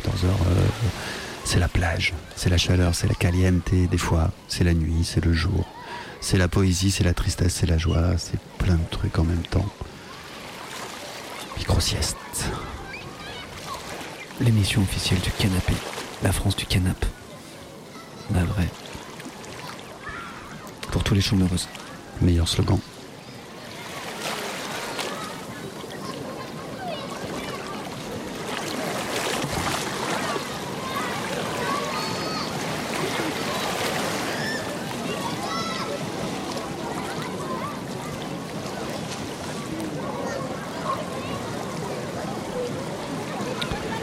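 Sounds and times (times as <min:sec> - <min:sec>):
rushing river water: 0:00.0 - 0:44.0
speech: 0:00.2 - 0:09.9, 0:11.6 - 0:12.8, 0:14.4 - 0:17.2, 0:18.3 - 0:18.8, 0:21.1 - 0:22.9.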